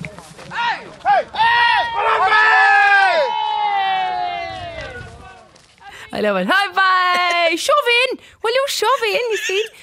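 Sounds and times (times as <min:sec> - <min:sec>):
crowd roaring outdoors at road bowling match: 0:00.5 - 0:05.3
speech: 0:06.2 - 0:06.7, 0:07.5 - 0:09.8.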